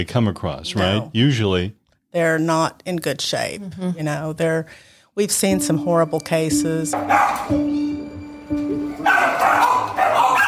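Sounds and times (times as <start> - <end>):
speech: 0.0 - 7.9
several dogs barking and yipping at a puppy mill: 7.0 - 7.7, 8.8 - 10.4.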